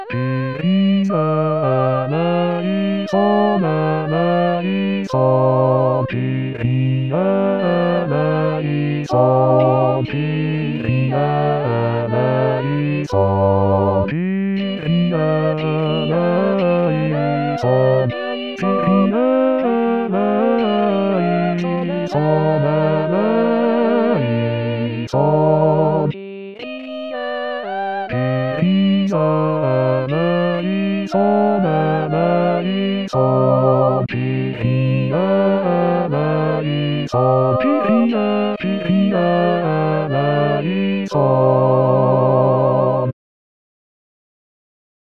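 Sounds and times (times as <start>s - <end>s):
bass voice singing a liturgical chant: 0.1s - 26.7s, 28.1s - 43.1s.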